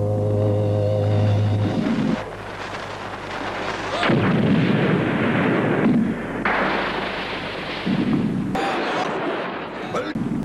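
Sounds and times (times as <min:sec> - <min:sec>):
low steady drone: 0:00.0 - 0:03.9
heavy cannon blasts: 0:02.6 - 0:10.4.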